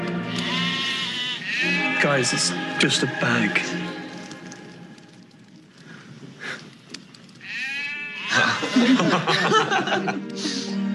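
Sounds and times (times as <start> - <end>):
donkey braying: 0.2 - 4.0, 7.4 - 9.2
speech: 2.0 - 3.8
laughter: 8.3 - 10.8.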